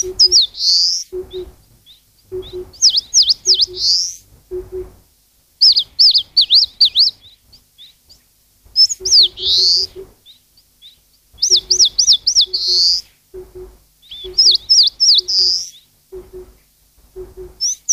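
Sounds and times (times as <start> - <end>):
low doubled hoots from another bird: 0.0 - 1.7, 2.3 - 5.0, 8.8 - 10.3, 11.4 - 17.9
eastern crowned warbler song: 0.0 - 5.0, 5.6 - 17.9.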